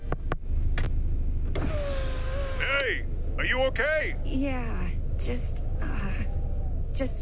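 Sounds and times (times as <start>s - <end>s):
truck engine idling rumble: 0.0s - 7.2s
electric truck window sliding down: 1.5s - 3.0s
speech: 2.9s - 6.2s, 7.0s - 7.2s.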